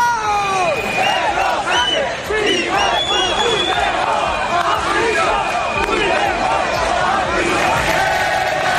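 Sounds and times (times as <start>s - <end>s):
crowd booing and shouting at a military parade in Madrid: 0.0s - 8.7s.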